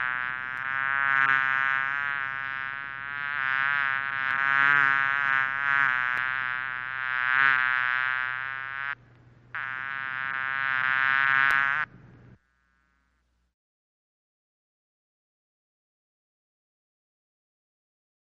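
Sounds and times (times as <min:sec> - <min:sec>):
bee buzzing: 0:00.0 - 0:13.2.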